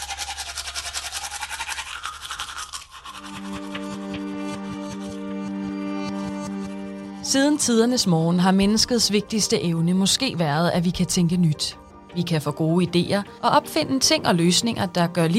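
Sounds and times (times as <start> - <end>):
toothbrush scrubbing teeth: 0.0 - 7.2
speech: 7.3 - 15.3.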